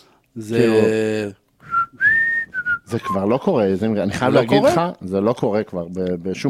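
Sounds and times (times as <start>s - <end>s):
man's brief voiced sound: 0.4s - 1.4s, 2.9s - 5.6s
speech: 0.4s - 1.4s, 2.9s - 6.4s
man whistling with his lips: 1.6s - 3.2s.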